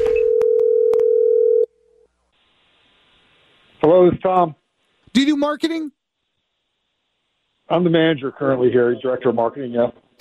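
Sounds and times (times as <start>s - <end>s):
telephone dial tone: 0.2s - 1.7s
speech: 3.9s - 6.0s, 7.7s - 10.1s.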